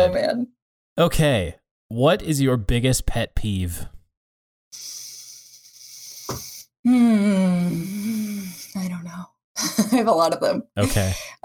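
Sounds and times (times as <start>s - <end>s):
speech: 0.0s - 3.9s, 6.3s - 11.4s
sharp inhale: 4.8s - 6.7s, 7.8s - 8.8s.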